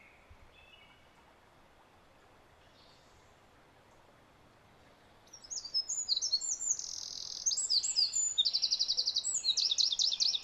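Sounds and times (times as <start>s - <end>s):
Eurasian wren Troglodytes troglodytes song: 5.2s - 10.4s.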